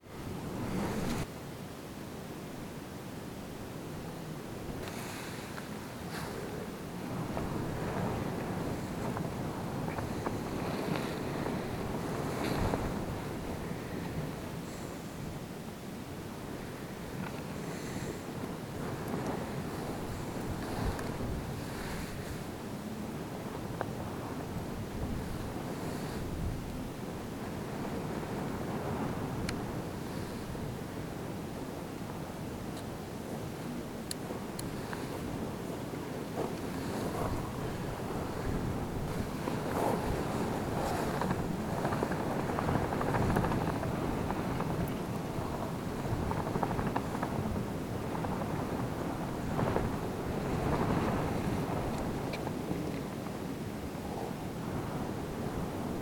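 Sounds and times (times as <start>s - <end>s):
wind: 0.0s - 56.0s.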